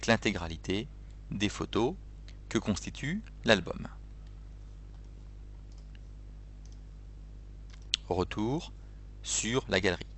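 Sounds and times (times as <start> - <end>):
speech: 0.0 - 4.0, 8.1 - 10.1
loud steady low hum: 0.0 - 10.1
computer mouse clicking on a Mac: 4.2 - 6.8.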